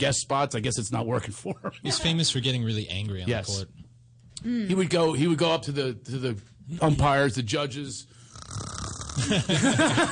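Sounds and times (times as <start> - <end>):
speech: 0.0 - 3.8, 4.4 - 10.1
person imitating snoring: 8.2 - 9.4
laughter: 9.2 - 10.1.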